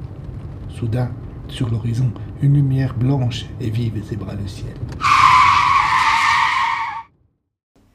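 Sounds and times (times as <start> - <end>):
speech: 0.7 - 5.2
car tires screeching while braking hard on a national road across a moor: 4.8 - 7.1.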